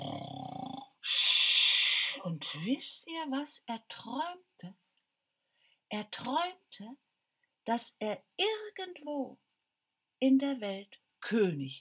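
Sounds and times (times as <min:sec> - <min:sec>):
tailor snoring deeply in bed: 0:00.0 - 0:01.2
speech: 0:02.2 - 0:04.8, 0:05.9 - 0:07.0, 0:07.7 - 0:09.4, 0:10.2 - 0:11.8.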